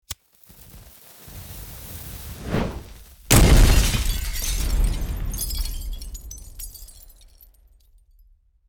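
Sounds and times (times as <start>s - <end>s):
fire burning in war: 0.1s - 5.4s
Molotov cocktail being thrown in war: 2.4s - 3.5s
Molotov glass breaking in war: 3.3s - 7.9s.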